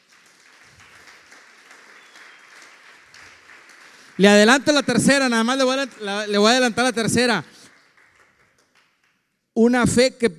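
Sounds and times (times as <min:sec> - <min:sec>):
audience applauding: 0:00.0 - 0:09.3
speech: 0:04.2 - 0:07.5, 0:09.6 - 0:10.3.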